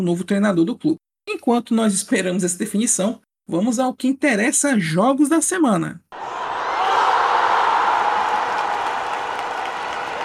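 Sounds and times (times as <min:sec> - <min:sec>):
speech: 0:00.0 - 0:06.5
large crowd booing: 0:06.2 - 0:10.2.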